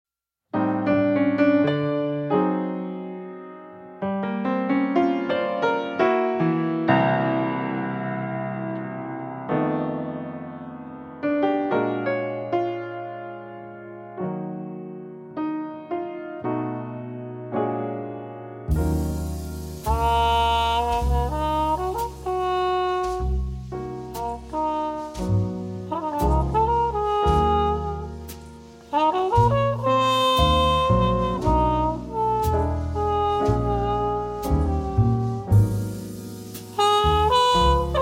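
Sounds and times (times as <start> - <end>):
piano jazz trio: 0.6 - 37.9
trumpet: 18.7 - 37.9.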